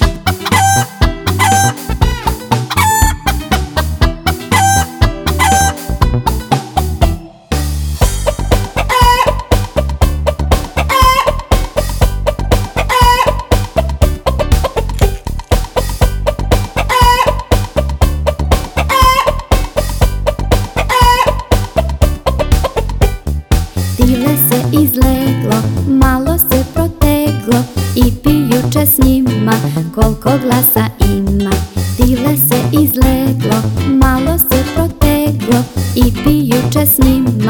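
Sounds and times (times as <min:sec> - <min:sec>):
rooster clucking: 0:00.0 - 0:06.9, 0:08.1 - 0:23.0
busy rhythmic musical backing: 0:00.0 - 0:37.4.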